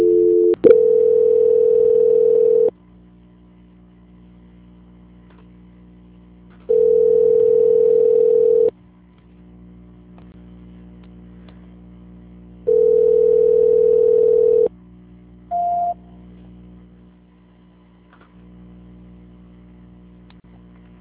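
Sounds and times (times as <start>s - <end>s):
telephone tone while a call is transferred: 0.0s - 2.7s, 6.7s - 8.7s, 12.7s - 14.7s, 15.5s - 16.0s.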